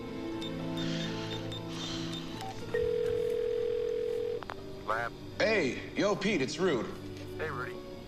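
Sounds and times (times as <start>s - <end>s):
faint electronic beeps: 0.3s - 3.3s
telephone dial tone: 2.4s - 4.4s
speech: 4.9s - 7.8s.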